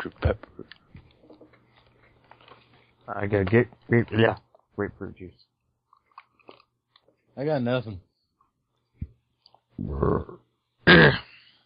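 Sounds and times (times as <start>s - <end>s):
speech: 0.0s - 0.5s, 3.1s - 5.5s, 7.4s - 8.1s, 9.8s - 11.2s
loud drawn-out burp: 9.8s - 11.3s.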